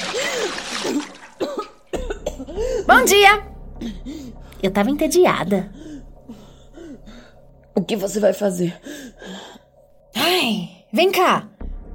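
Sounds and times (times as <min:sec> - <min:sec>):
bucket of water splashed on face: 0:00.0 - 0:01.9
person sputtering, gasping and coughing: 0:00.0 - 0:02.9
speech: 0:02.9 - 0:04.0, 0:04.6 - 0:05.8, 0:07.8 - 0:09.4, 0:10.3 - 0:11.5.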